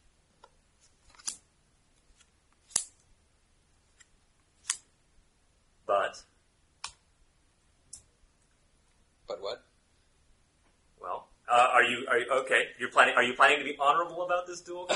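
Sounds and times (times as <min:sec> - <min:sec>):
playing cards being dealt during a tabletop game: 0:00.4 - 0:03.1, 0:03.8 - 0:04.9
speech: 0:05.9 - 0:06.3, 0:11.8 - 0:14.9.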